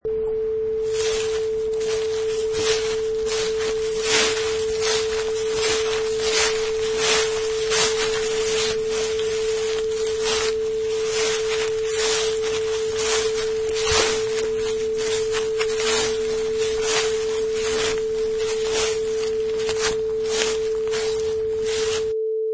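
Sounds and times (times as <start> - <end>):
footsteps walking through leaves: 0.9 - 22.1.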